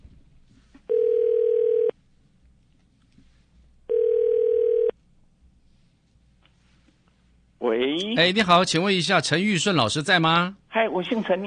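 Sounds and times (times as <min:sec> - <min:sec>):
faint hum of noise: 0:00.0 - 0:11.4
telephone ringback tone as radio show phones a guest: 0:00.9 - 0:01.9, 0:03.9 - 0:04.9
speech: 0:08.0 - 0:11.4.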